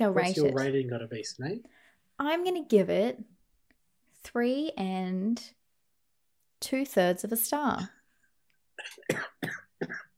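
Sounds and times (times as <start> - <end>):
speech: 0.0 - 3.3, 4.2 - 5.6, 6.6 - 8.0
harsh breathy coughing fit: 8.8 - 10.1.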